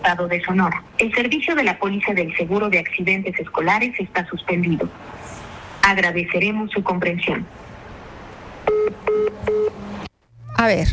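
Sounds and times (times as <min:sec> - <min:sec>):
speech: 0:00.0 - 0:07.6, 0:10.6 - 0:10.9
touch-tone beeps as a telephone number is dialed: 0:08.7 - 0:09.7.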